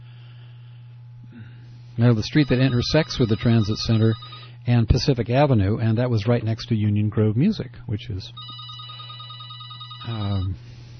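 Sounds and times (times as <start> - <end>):
low hum of noise: 0.0 - 10.9
speech: 1.4 - 8.7, 10.1 - 10.7
telephone ringing with short electronic trill: 2.2 - 4.6, 8.4 - 10.6.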